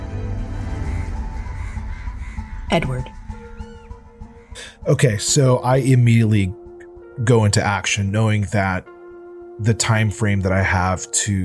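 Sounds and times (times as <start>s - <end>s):
hundreds of crows cawing in a room: 0.2s - 5.2s
speech: 2.7s - 3.2s, 4.8s - 6.6s, 7.2s - 8.9s, 9.6s - 11.4s.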